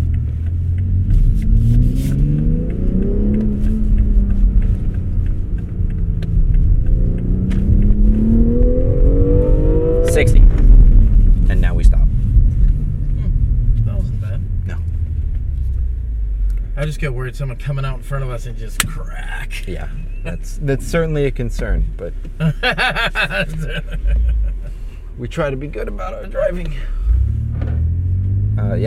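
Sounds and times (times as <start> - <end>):
SUV engine revving while driving off-road: 0.0 - 16.6, 25.3 - 28.8
speech: 16.9 - 24.4, 25.2 - 27.0, 28.6 - 28.8
laughter: 22.4 - 24.8.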